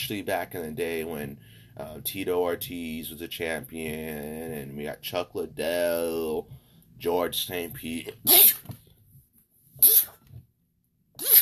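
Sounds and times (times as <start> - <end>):
speech: 0.1 - 8.8, 9.8 - 10.1
quiet breathing: 1.3 - 1.8, 6.4 - 7.0
person sneezing: 8.3 - 8.7, 9.8 - 10.2, 11.2 - 11.4.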